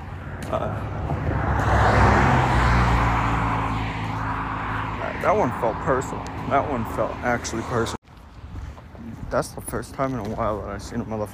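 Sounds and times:
heavy semi-truck driving past: 0.0s - 8.0s
speech: 0.5s - 1.1s, 5.2s - 8.0s, 9.3s - 11.3s.

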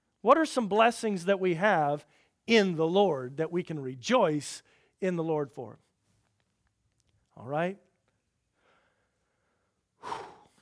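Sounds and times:
speech: 0.2s - 5.8s, 7.4s - 7.8s
breath drawn in: 8.6s - 10.6s.

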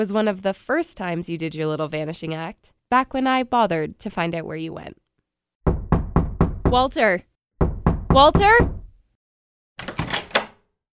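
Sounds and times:
speech: 0.0s - 5.0s, 6.7s - 7.3s, 8.1s - 8.8s
heavy knocking on a door: 5.7s - 7.0s, 7.6s - 9.0s.

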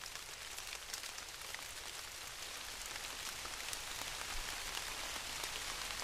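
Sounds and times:
rain pattering on spongy moss of mossy tundra: 0.0s - 6.0s.

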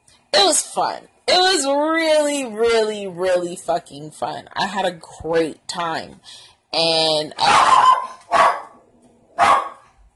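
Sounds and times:
speech: 0.3s - 8.1s
pet dog barking in greeting: 7.4s - 8.8s, 9.4s - 9.9s.

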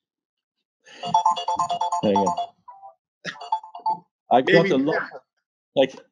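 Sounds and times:
speech: 0.9s - 2.5s, 4.3s - 5.2s, 5.8s - 6.1s
phone ringing with a bright melodic electronic ringtone: 1.0s - 4.8s.

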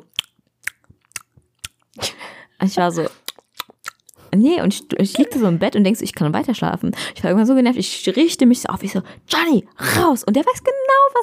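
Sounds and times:
voice imitating a dog's wet lip-smacking and chewing: 0.0s - 2.0s, 2.8s - 4.2s, 4.9s - 5.6s
speech: 2.6s - 3.2s, 4.4s - 11.2s.

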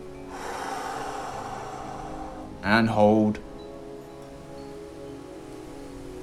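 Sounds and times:
long steady breath exhale during a guided body-scan relaxation: 0.2s - 2.6s
speech: 2.6s - 3.5s.

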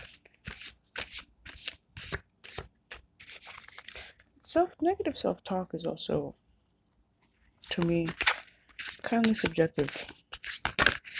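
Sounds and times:
playing cards being shuffled with crisp papery riffling: 0.0s - 4.1s, 7.6s - 11.1s
speech: 4.5s - 6.4s, 7.8s - 8.2s, 9.1s - 10.2s.

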